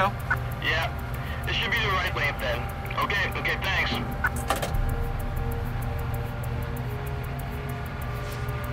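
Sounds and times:
speech: 0.0s - 4.6s
freight train of grain cars roaring west along the track: 0.0s - 8.7s.

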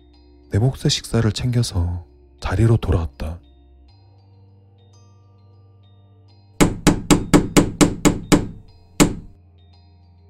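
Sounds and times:
speech: 0.5s - 3.4s
heavy metallic bangs on an iron door: 6.6s - 9.4s.

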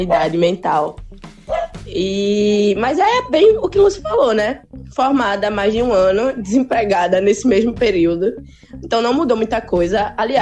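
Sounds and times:
speech: 0.0s - 1.3s, 1.9s - 10.4s
dog barking: 1.5s - 1.8s.

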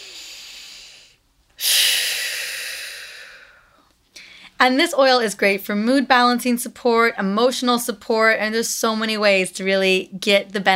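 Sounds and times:
deep belly breath in and out: 0.0s - 4.6s
speech: 4.6s - 10.7s.

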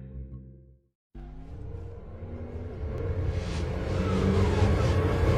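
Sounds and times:
Formula E electric race cars racing at night in a desert city: 1.2s - 5.3s.

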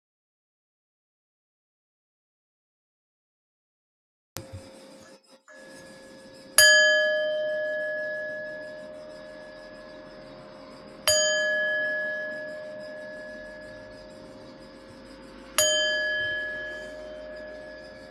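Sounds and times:
meditation bell strikes: 6.6s - 10.2s, 11.0s - 14.8s, 15.5s - 18.0s.

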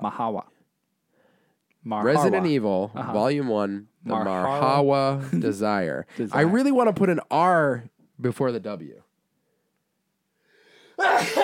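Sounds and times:
speech: 0.0s - 0.6s, 1.8s - 9.0s, 11.0s - 11.4s
person sneezing: 11.0s - 11.4s.

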